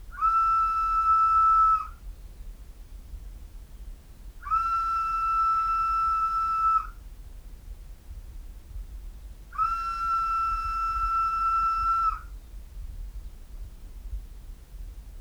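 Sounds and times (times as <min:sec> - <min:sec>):
whistle in courtyard recorded halfway up stairs: 0:00.2 - 0:01.9, 0:04.4 - 0:07.0, 0:09.6 - 0:12.2.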